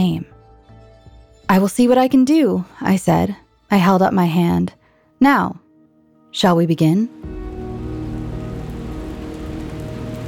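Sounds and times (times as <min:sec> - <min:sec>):
speech: 0:01.5 - 0:05.6, 0:06.3 - 0:07.4
steady rain drumming on a surface: 0:07.2 - 0:10.2.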